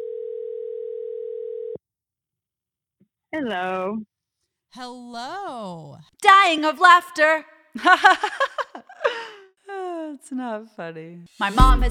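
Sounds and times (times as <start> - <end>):
telephone dial tone: 0.0 - 1.8
speech: 3.3 - 4.1, 4.7 - 8.6, 10.2 - 11.8
laughter: 7.8 - 9.4.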